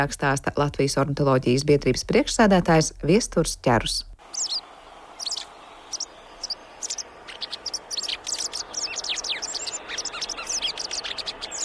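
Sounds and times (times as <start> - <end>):
speech: 0.0 - 4.6
soft outdoor hiss: 0.0 - 11.6
white wagtail calls: 4.2 - 11.6.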